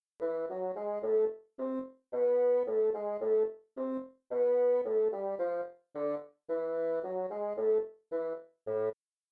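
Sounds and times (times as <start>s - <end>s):
melodic minor scales: 0.2s - 9.0s.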